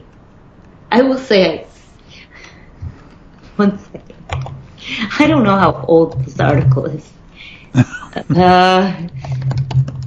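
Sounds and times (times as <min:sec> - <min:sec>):
low steady hum: 0:00.0 - 0:10.0
speech: 0:00.9 - 0:01.7, 0:03.6 - 0:03.9, 0:05.2 - 0:09.2
computer keyboard typing: 0:04.3 - 0:04.6, 0:09.1 - 0:10.0.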